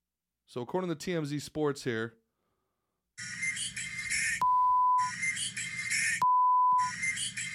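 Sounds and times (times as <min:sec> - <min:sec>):
speech: 0:00.5 - 0:02.2
censor bleeps: 0:04.4 - 0:05.1, 0:06.2 - 0:06.9.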